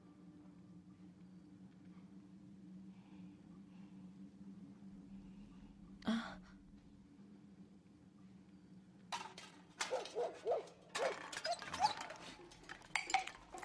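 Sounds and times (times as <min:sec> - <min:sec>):
clattering noise: 0:09.1 - 0:13.6
dog barking: 0:09.8 - 0:11.2.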